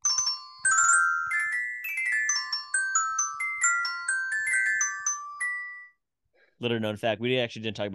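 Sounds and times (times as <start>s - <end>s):
bright synthesized ringtone-style game segment jingle: 0.0s - 6.0s
speech: 6.6s - 7.9s.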